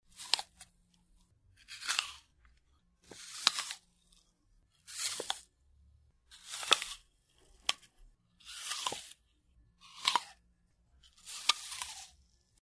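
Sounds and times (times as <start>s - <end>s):
biting an apple: 0.1s - 1.0s, 1.6s - 5.5s, 6.3s - 9.2s, 9.8s - 10.4s, 11.1s - 12.3s.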